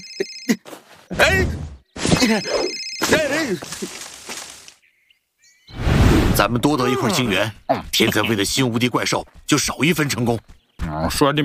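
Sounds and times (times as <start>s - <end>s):
telephone ringing with high electronic tones: 0.0s - 0.6s, 2.2s - 3.3s
voices and effortful cries: 0.5s - 4.2s, 6.7s - 8.4s
speech: 2.3s - 4.0s, 6.4s - 11.4s.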